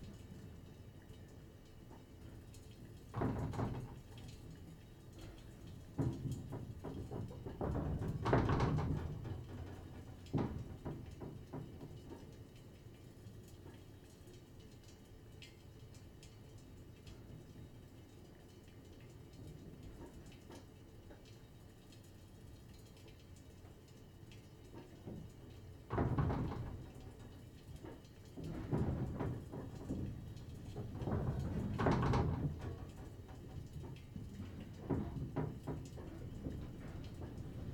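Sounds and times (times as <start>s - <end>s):
steady low rumble of wind: 0.0s - 21.7s, 24.2s - 37.7s
wind gusts rattling glass sliding doors: 3.1s - 4.6s, 5.7s - 11.9s, 25.9s - 37.7s.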